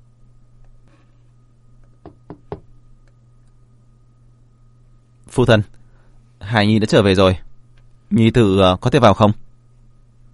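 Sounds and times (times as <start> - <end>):
steady low hum: 0.0 - 10.3
knocking on a closed door: 2.0 - 2.7
speech: 5.4 - 5.8, 6.5 - 7.4, 8.1 - 9.4.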